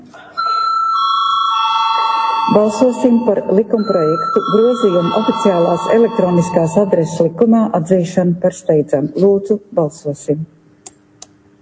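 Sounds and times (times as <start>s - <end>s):
electric bell ringing in a parliament chamber before a vote: 0.4s - 7.8s
speech: 2.5s - 10.6s.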